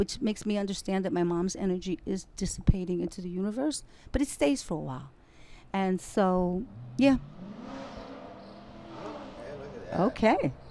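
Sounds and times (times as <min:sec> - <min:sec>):
speech: 0:00.0 - 0:07.8, 0:09.9 - 0:10.6
car engine revving: 0:06.6 - 0:10.7.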